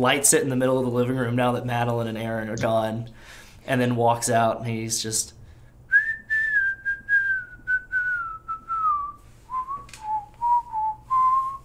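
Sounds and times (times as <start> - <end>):
speech: 0.0 - 5.4
low hum: 5.4 - 11.6
person whistling a slow country-style tune: 5.9 - 11.6.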